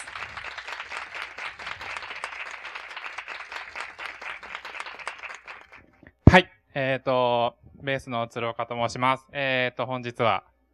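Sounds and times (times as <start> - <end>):
audience applause welcoming a speaker: 0.0 - 5.9
speech: 6.3 - 10.5.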